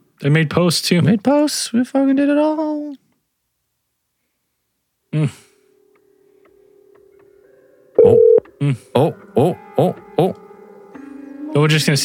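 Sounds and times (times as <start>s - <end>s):
speech: 0.2s - 3.0s, 5.2s - 5.4s, 8.6s - 10.4s, 11.5s - 12.0s
faint steady hum: 2.7s - 8.5s
short evenly spaced beeps: 8.0s - 8.4s
telephone signalling tones marking an incoming call: 8.0s - 8.4s.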